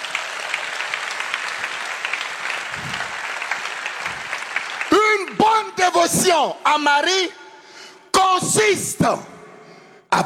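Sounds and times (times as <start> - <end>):
congregation applauding during a religious service: 0.0 - 6.4
speech: 6.0 - 7.4, 8.4 - 9.3.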